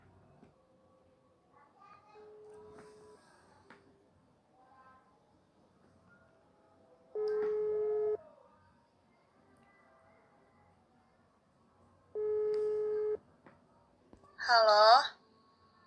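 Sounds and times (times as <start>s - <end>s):
phone ringback tone: 7.2s - 8.2s, 12.2s - 13.2s.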